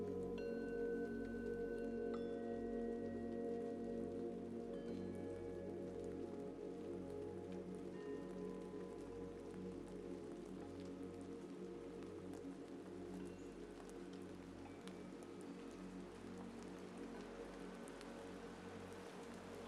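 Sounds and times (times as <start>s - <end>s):
gentle rain falling: 0.0s - 19.6s
low even hum: 0.0s - 19.6s.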